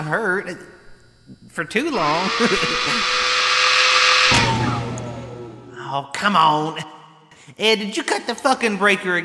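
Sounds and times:
speech: 0.1s - 3.2s, 5.9s - 9.2s
power drill whirring with high-pitched motor whine: 1.8s - 5.7s.

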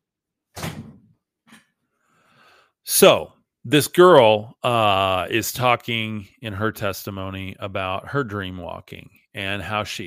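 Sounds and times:
door pushed shut with a solid thud: 0.5s - 1.2s
speech: 2.9s - 10.0s.

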